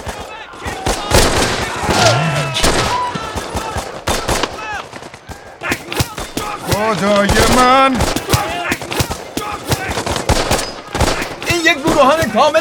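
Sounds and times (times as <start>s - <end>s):
rifle fire in rapid volleys: 0.0s - 12.4s
faint shouting voices: 0.0s - 12.5s
speech: 6.9s - 8.2s, 12.0s - 12.5s.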